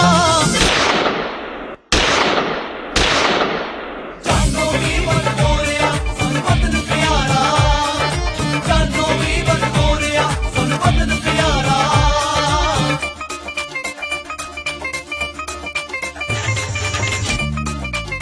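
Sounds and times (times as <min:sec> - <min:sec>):
loud gunshots with long decay: 0:00.5 - 0:04.5
dense music: 0:04.3 - 0:18.2.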